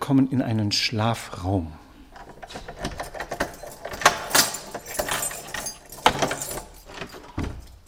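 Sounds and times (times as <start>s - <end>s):
speech: 0.1s - 1.8s
door creaking open: 2.1s - 7.8s
keys jangling and rattling in a lock: 2.1s - 7.8s.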